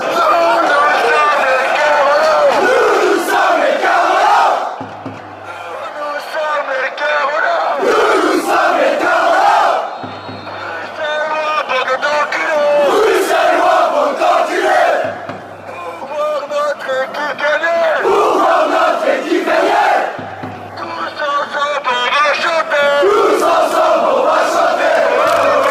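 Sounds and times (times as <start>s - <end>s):
fans chanting: 0.0s - 4.8s, 5.4s - 25.6s.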